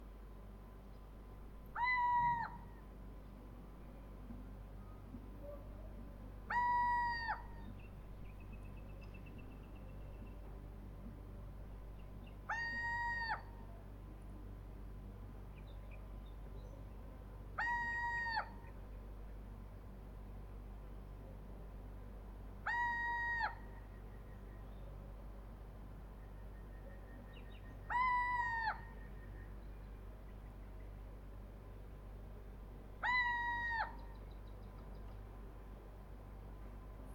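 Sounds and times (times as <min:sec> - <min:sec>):
little owl calling: 0:01.7 - 0:02.9, 0:04.8 - 0:07.8, 0:12.2 - 0:13.8, 0:17.6 - 0:18.7, 0:22.6 - 0:24.8, 0:26.4 - 0:29.7, 0:33.0 - 0:35.0.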